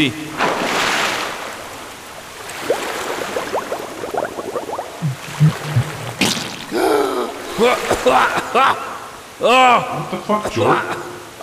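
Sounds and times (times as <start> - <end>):
speech: 0.0 - 0.5, 7.6 - 11.2
underwater bubbling and gurgling as a person holds their head underwater: 2.2 - 8.0
person sputtering, coughing and choking on water they breathed in: 5.0 - 7.3.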